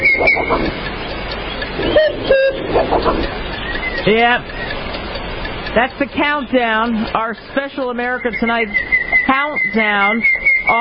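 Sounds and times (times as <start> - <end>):
cuckoo call sound effect: 0.0 - 4.8, 8.1 - 10.7
speech: 4.0 - 4.6, 5.8 - 10.7.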